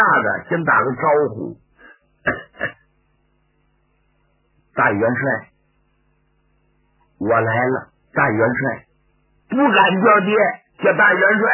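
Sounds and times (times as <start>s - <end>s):
speech: 0.2s - 1.6s, 4.8s - 5.5s, 7.2s - 8.9s, 9.5s - 11.5s
man giving a soft light cough as a polite greeting: 2.2s - 2.9s.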